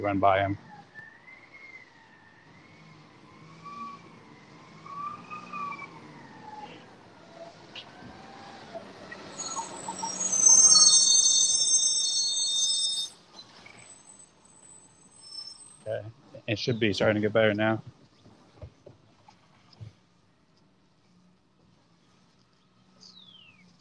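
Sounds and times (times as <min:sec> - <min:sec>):
speech: 0:00.0 - 0:00.7, 0:16.0 - 0:18.0
garbage truck brakes hissing and squealing: 0:00.0 - 0:17.7
garbage truck engine rumbling: 0:02.5 - 0:18.9.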